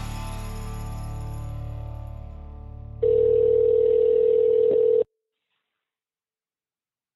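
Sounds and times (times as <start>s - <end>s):
humming telephone ringing tone of a call to a restaurant supply store: 3.0s - 5.1s.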